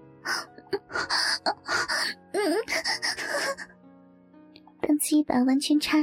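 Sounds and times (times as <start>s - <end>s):
woman letting out short breathy moans and muffled groans: 0.3s - 3.7s
speech: 5.1s - 6.0s.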